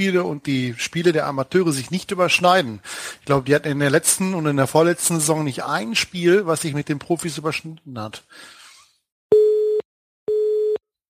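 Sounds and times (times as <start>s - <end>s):
speech: 0.0s - 8.6s
telephone busy signal after a dropped call: 9.3s - 10.8s.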